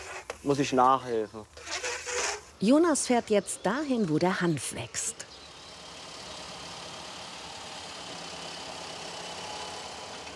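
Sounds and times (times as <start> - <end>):
speech: 0.4 - 1.7, 2.6 - 5.2
threshing machine running while threshing hemp: 5.3 - 10.3.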